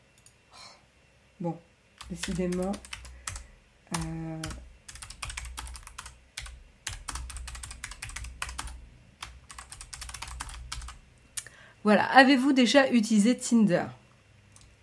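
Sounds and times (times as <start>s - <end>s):
speech: 1.4s - 2.9s, 3.9s - 4.6s, 11.8s - 14.0s
typing on a computer keyboard: 2.0s - 11.0s.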